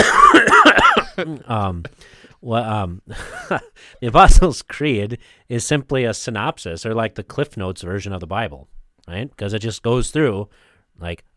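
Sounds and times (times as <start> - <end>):
cough held back in the throat: 0.0 - 2.0
speech: 1.2 - 11.3.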